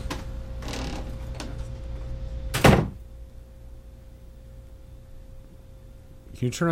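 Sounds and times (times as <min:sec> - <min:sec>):
low hum: 0:00.0 - 0:06.4
door scraping as it swings shut: 0:00.6 - 0:01.6
heavy door closing thud: 0:02.5 - 0:03.0
speech: 0:06.4 - 0:06.6.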